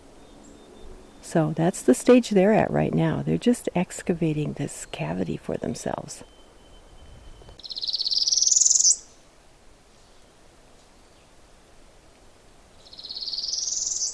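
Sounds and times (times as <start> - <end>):
faint hiss: 0.0 - 14.1
speech: 1.3 - 6.4
northern parula warbler rising scratchy buzzy trills: 6.2 - 9.2, 12.8 - 14.1.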